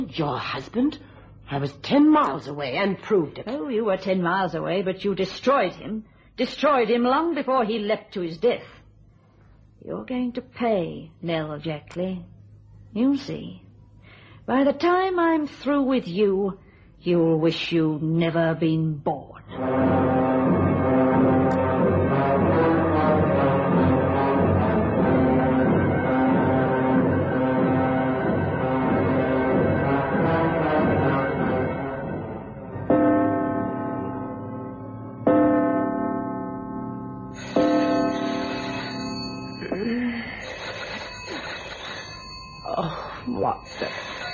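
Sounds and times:
speech: 0.0 - 8.8, 9.8 - 12.3, 12.9 - 13.6, 14.5 - 20.1
dense sustained tonal sound: 19.5 - 44.3
telephone ringing: 37.4 - 44.3.

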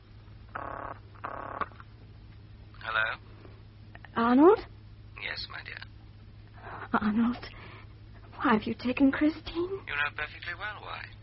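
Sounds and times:
low steady hum: 0.0 - 11.2
telephone ringing tone heard down the line: 0.5 - 1.7
speech: 4.3 - 4.7, 7.0 - 7.6, 8.5 - 11.2.

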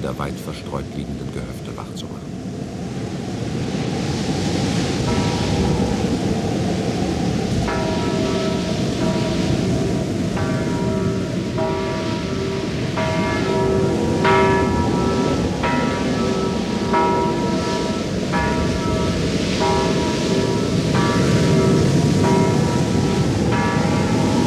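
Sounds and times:
speech: 0.0 - 2.7
rushing noise of storm and flood water: 0.0 - 24.4
single village church bell tolling, rung by pulling its rope during a flood: 5.0 - 5.8, 7.6 - 24.4.

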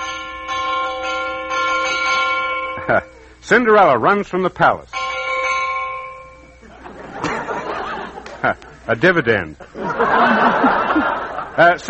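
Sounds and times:
clock striking twelve with bell strikes: 0.0 - 4.1, 4.9 - 7.9
speech: 2.9 - 5.0, 8.4 - 10.8, 11.6 - 11.8
laughter: 6.6 - 8.9, 9.6 - 11.8.

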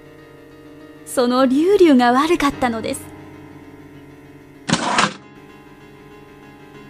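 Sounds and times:
speech: 1.1 - 3.1
wire mousetrap entrance snapping shut: 4.7 - 5.2.

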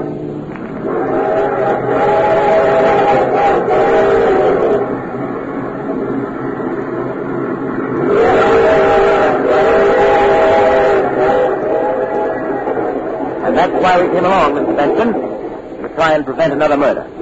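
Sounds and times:
train rumbling along the rails: 0.0 - 17.2
long wavering train whistle: 0.8 - 5.2, 7.9 - 14.8
speech: 14.0 - 15.3, 16.0 - 17.2.

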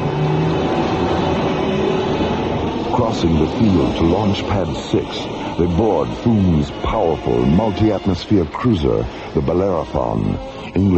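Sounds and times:
urban link train leaving a tube station: 0.0 - 10.9
speech: 3.0 - 10.9.

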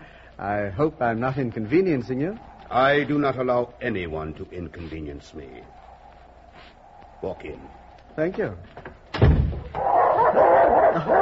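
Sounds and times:
speech: 0.4 - 5.8, 7.2 - 10.4, 11.0 - 11.2
dogs whining and growling at a house: 9.7 - 11.2.

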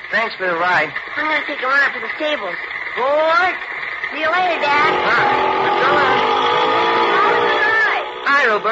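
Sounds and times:
speech: 0.3 - 6.6, 8.3 - 8.6
motor scooter engine ridden hard: 3.1 - 8.6.

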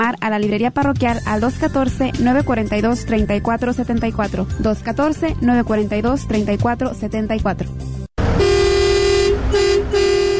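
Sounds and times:
speech: 0.1 - 8.5
truck air horn blasts: 8.2 - 10.3.

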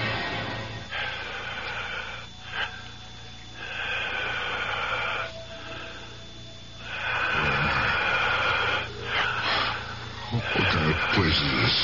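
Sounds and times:
heavy wheezing rasping breathing: 0.1 - 11.8.

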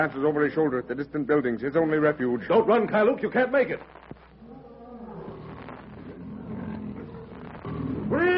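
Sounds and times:
speech: 0.0 - 4.1
lion growling low and rumbling: 4.8 - 8.2.

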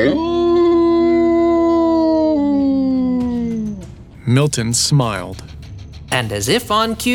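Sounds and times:
wolf howling: 0.0 - 4.0
speech: 4.3 - 5.5, 6.1 - 7.1.

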